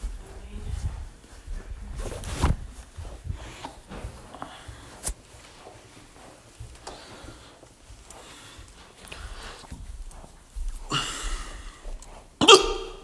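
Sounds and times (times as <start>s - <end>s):
quiet breathy rustling: 0.0s - 13.0s
person hiccuping: 12.4s - 13.0s.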